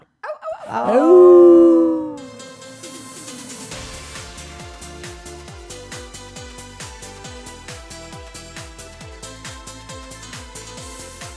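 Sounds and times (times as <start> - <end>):
people howling together imitating a wolf: 0.6 - 2.5
speech: 0.7 - 1.5.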